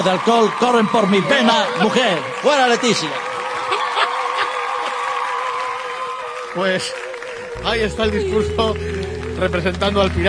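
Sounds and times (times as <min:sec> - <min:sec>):
speech: 0:00.0 - 0:03.3, 0:06.6 - 0:07.0, 0:07.6 - 0:10.2
crowd applauding after a speech: 0:00.0 - 0:10.2
laughter: 0:02.8 - 0:05.2.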